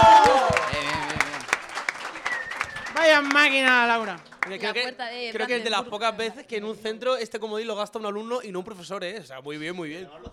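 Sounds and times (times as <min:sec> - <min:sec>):
audience applause at a school quiz game: 0:00.0 - 0:05.6
speech: 0:03.2 - 0:10.3.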